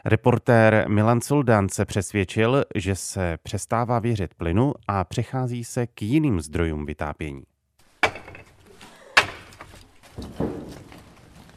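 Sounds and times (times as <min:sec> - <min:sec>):
speech: 0:00.0 - 0:07.5
firewood chunks knocking as they are stacked from large bags: 0:07.8 - 0:11.5
rustling handling: 0:07.8 - 0:11.5.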